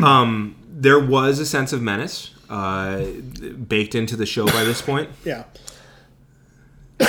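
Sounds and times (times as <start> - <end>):
speech: 0.0 - 5.7
sharp loud cough: 4.4 - 5.0.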